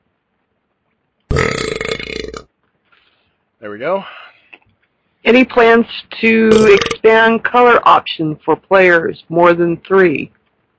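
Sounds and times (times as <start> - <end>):
loud belch: 1.3 - 2.5, 6.5 - 7.0
speech: 3.6 - 4.2, 5.2 - 10.4.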